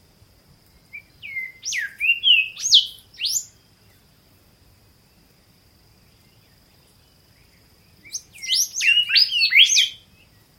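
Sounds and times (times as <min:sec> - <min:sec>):
Golden Whistler whistling on Norfolk Island: 0:01.0 - 0:03.5, 0:08.1 - 0:10.0.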